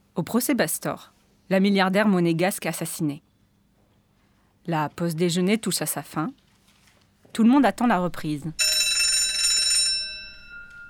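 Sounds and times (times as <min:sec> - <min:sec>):
speech: 0:00.2 - 0:03.3, 0:04.7 - 0:06.4, 0:07.3 - 0:08.6
courtroom bell ringing to announce the court's entrance at a trial: 0:08.6 - 0:10.8.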